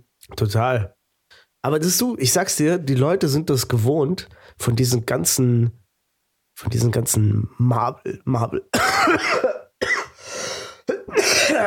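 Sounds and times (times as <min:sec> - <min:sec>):
speech: 0:00.3 - 0:01.0, 0:01.6 - 0:05.8, 0:06.6 - 0:09.6
harsh raspy coughing: 0:08.7 - 0:11.6.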